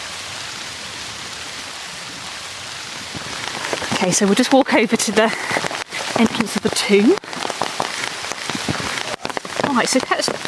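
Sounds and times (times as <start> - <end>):
rain falling outdoors: 0.0 - 10.4
speech: 4.0 - 7.5, 9.8 - 10.4.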